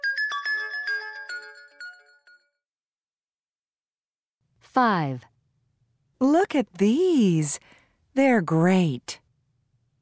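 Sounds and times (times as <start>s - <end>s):
cell phone ringtone playing a chiming electronic melody: 0.0s - 2.6s
speech: 4.8s - 5.3s, 6.2s - 9.2s.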